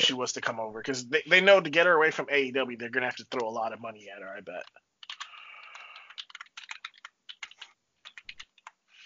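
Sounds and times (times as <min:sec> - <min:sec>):
speech: 0:00.2 - 0:04.8
rapid keyboard typing: 0:04.5 - 0:08.8.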